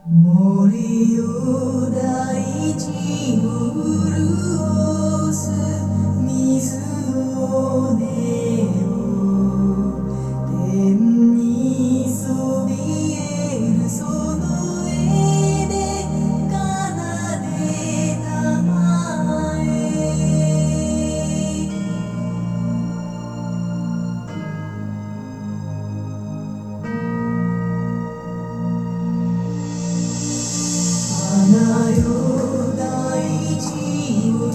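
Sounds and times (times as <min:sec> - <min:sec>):
music: 0:00.0 - 0:34.5.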